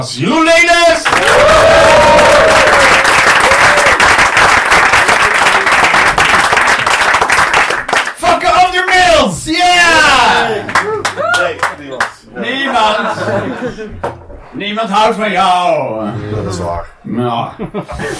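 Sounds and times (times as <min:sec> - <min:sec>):
speech: 0:00.0 - 0:01.8, 0:09.2 - 0:18.1
crowd applause and clapping: 0:01.0 - 0:08.2, 0:10.2 - 0:12.1
laughter: 0:12.2 - 0:14.1, 0:17.4 - 0:18.1.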